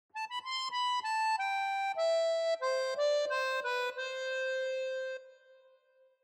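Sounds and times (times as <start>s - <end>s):
accordion transition melody fragment: 0.2s - 5.6s.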